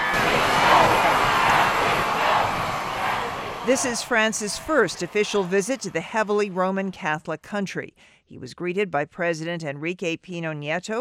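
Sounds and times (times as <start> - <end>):
large crowd cheering and shouting at airport arrival: 0.0 - 7.1
speech: 3.7 - 10.9.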